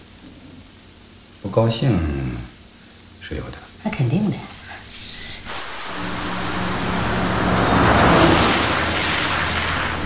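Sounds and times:
rain heard from inside a car: 0.0s - 10.0s
speech: 1.4s - 2.3s, 3.3s - 4.6s
road noise inside a car: 4.8s - 10.0s
low rumble of a car engine: 5.8s - 10.0s.

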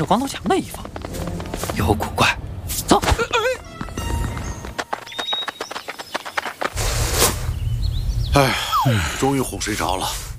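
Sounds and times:
speech: 0.0s - 1.0s, 1.6s - 3.2s, 8.4s - 10.2s
donkey hooves clip-clopping: 0.0s - 2.4s, 3.0s - 7.0s
broad rushing hiss: 6.7s - 7.6s.

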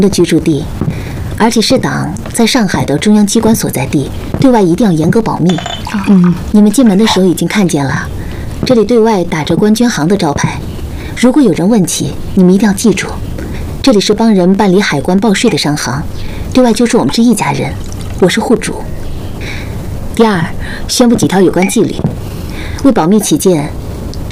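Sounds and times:
speech: 0.0s - 0.8s, 1.4s - 8.1s, 8.7s - 10.6s, 11.2s - 19.0s, 20.2s - 22.1s, 22.8s - 23.8s
people talking at a table during a family meal: 0.0s - 23.8s
glasses clinking in a toast at a family meal: 5.4s - 6.5s.

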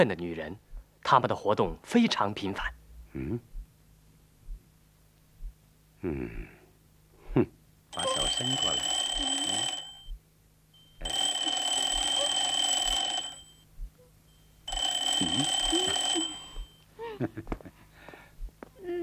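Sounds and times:
speech: 0.0s - 3.5s, 6.0s - 6.6s, 7.4s - 9.0s, 15.2s - 15.8s, 17.2s - 17.6s
telephone ringing: 8.0s - 10.1s, 10.8s - 13.6s, 14.4s - 16.8s.

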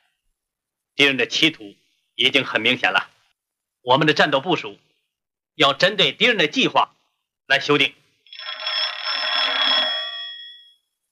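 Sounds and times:
speech: 1.0s - 3.1s, 3.8s - 4.9s, 5.6s - 8.0s
telephone bell ringing: 8.3s - 11.0s.

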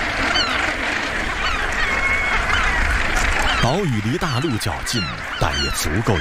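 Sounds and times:
large northern gannet colony calling: 0.0s - 6.2s
speech: 3.6s - 6.2s.

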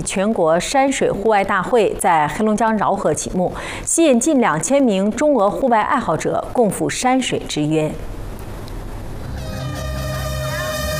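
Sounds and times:
speech: 0.0s - 8.2s
starting horn blast: 9.2s - 10.9s.

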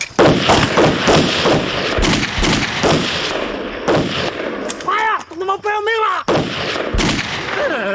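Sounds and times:
gunfire in a tense armed standoff: 0.2s - 4.8s, 6.3s - 7.8s.

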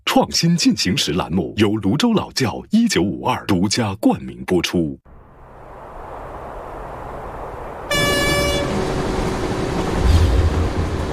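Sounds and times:
speech: 0.2s - 5.1s
moving train rumble on the Beijing–Shanghai railway in China heard aboard: 5.2s - 11.1s
loud train horn blast: 7.9s - 10.7s.

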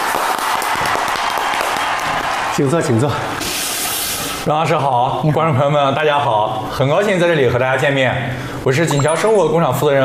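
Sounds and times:
studio audience applause welcoming a company manager onto a stage: 0.0s - 2.8s
speech: 2.6s - 3.6s, 4.4s - 10.0s.

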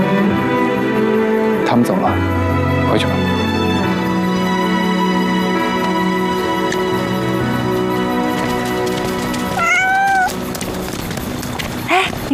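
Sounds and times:
sustained music: 0.0s - 12.3s
speech: 1.8s - 3.4s
kitten meowing: 9.4s - 10.4s.

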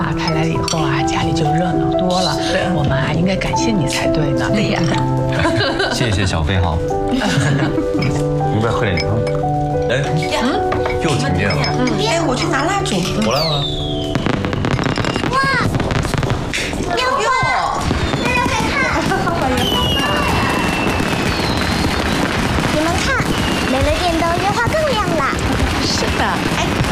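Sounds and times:
speech: 0.1s - 14.0s
laughter: 5.3s - 6.4s, 7.1s - 8.3s, 18.7s - 20.5s
whistling firework rockets rising: 13.4s - 16.8s, 17.8s - 26.9s
firecrackers and fireworks crackling and popping during New Year celebrations in Shanghai: 13.4s - 26.9s.

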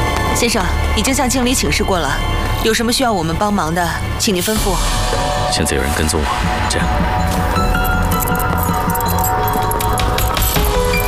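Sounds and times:
speech: 0.4s - 8.5s
metal safe keys jangling and clinking: 7.3s - 11.0s.

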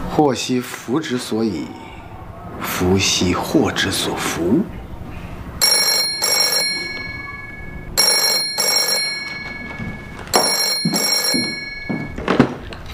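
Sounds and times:
speech: 0.2s - 1.9s, 2.8s - 4.8s
telephone ringing with metallic bell tones: 5.6s - 12.4s.

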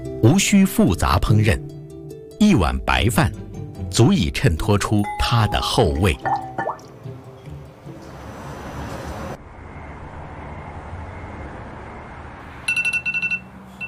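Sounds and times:
speech: 0.4s - 1.8s, 2.4s - 6.4s
alarm clock beeping at four in the morning: 12.7s - 13.8s.

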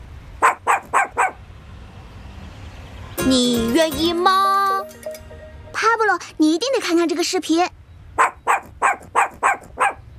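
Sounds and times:
puppy barking with a sing-song tone: 0.4s - 1.4s, 8.2s - 10.1s
speech: 3.3s - 4.6s, 5.8s - 7.8s.

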